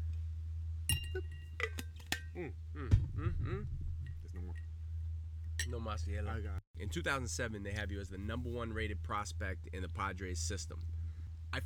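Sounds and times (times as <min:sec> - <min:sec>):
steady low hum: 0:00.0 - 0:11.6
bright glass clinks: 0:00.9 - 0:02.3
speech: 0:02.4 - 0:02.9, 0:05.7 - 0:11.6
person swallowing while sipping a drink from a glass: 0:02.8 - 0:04.6.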